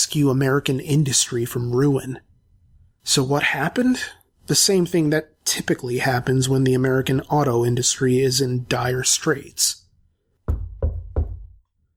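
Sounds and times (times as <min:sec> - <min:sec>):
speech: 0:00.0 - 0:02.3, 0:03.0 - 0:09.8
firm knocks on a door: 0:10.5 - 0:11.6.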